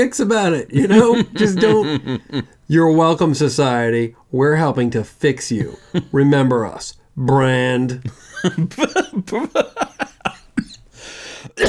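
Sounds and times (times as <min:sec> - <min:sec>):
speech: 0:00.0 - 0:10.0, 0:11.4 - 0:11.6
laughter: 0:00.8 - 0:02.6, 0:08.0 - 0:10.8
raspy exhale: 0:11.0 - 0:11.6
person coughing: 0:11.5 - 0:11.6.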